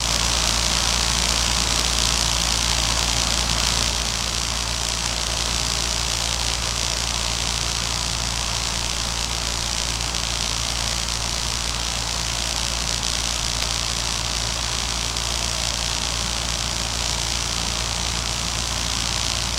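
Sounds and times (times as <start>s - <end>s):
power plant electrical buzz and hum: 0.0s - 19.5s.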